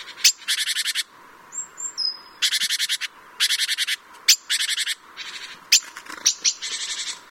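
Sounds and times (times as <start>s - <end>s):
great tit sharp clicks: 2.0s - 7.2s.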